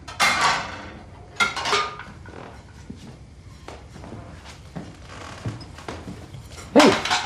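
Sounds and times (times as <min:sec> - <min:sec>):
crockery clattering while dishes are washed in a kitchen: 0:00.1 - 0:02.6, 0:06.4 - 0:07.2
plates and utensils clinking while dishes are washed: 0:00.1 - 0:02.7, 0:06.4 - 0:07.2.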